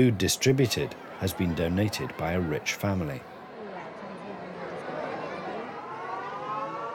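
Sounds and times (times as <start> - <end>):
speech: 0.0 - 3.3
murmur of a large crowd at a Chishti dargah during Ramadan: 0.0 - 6.9
wailing siren signalling time to break the fast during Ramadan: 5.9 - 6.9.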